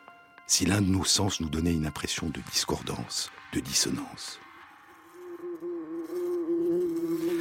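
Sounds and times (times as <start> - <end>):
speech: 0.5 - 4.5
bee buzzing in flight: 4.9 - 7.3.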